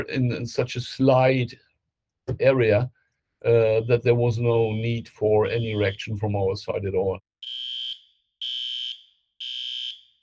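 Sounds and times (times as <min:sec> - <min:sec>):
speech: 0:00.0 - 0:01.6, 0:02.3 - 0:07.7
shrill electronic alarm beeps from a load monitoring system: 0:04.6 - 0:06.1, 0:07.4 - 0:10.2.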